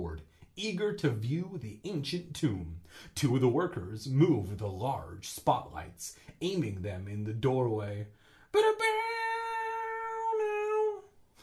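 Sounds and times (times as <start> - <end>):
speech: 0.6 - 9.2
person humming a tune like a meowing cat: 8.8 - 11.2.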